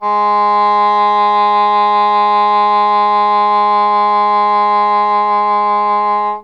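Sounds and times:
English horn note G sharp 3: 0:00.0 - 0:06.4.

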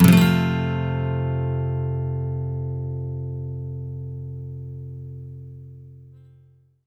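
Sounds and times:
electric guitar sweep loop: 0:00.0 - 0:05.9.

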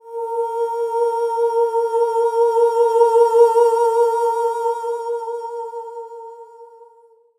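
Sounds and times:
soprano singing A sharp 4: 0:00.0 - 0:06.6.

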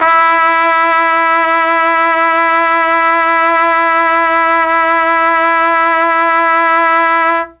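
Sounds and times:
E2 trumpet note on a Mellotron: 0:00.0 - 0:07.5.

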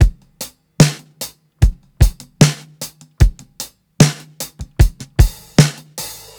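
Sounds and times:
drum loop at 75 BPM: 0:00.0 - 0:06.3.

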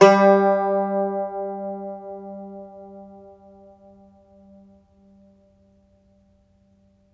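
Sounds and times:
Irish bouzouki plucked strings: 0:00.0 - 0:03.8.

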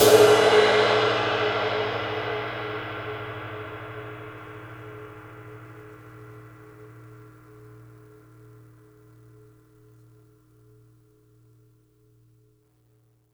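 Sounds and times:
ride cymbal: 0:00.0 - 0:06.8.

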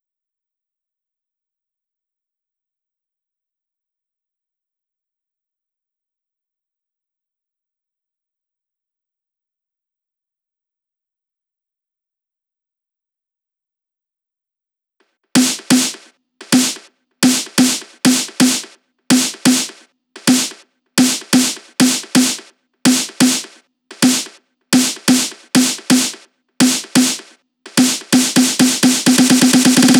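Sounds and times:
drum loop with snare: 0:15.4 - 0:29.9.

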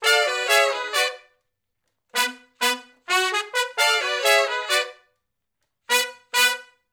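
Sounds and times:
R&B horn section riff moving from harmony to unison: 0:00.0 - 0:01.3, 0:02.2 - 0:05.0, 0:05.9 - 0:06.8.

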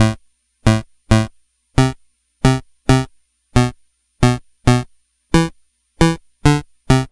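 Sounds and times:
eight-bit chiptune bass: 0:00.0 - 0:07.1.

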